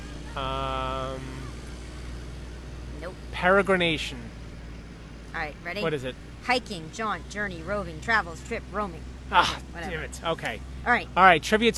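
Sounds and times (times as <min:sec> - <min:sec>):
truck driving by: 0:00.0 - 0:11.7
speech: 0:00.4 - 0:00.8, 0:03.4 - 0:04.4, 0:05.4 - 0:11.7.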